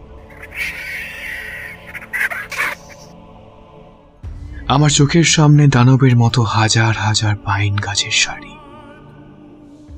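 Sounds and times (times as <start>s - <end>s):
strange bird calling in a pine forest: 0.0s - 3.2s
speech: 4.7s - 8.6s.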